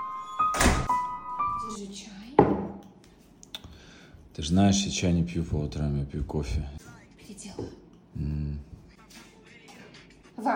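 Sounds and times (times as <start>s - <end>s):
door creaking: 0.0s - 1.1s
door shutting with a heavy thud: 0.5s - 1.0s
speech: 1.7s - 2.6s, 4.4s - 8.4s, 10.4s - 10.5s.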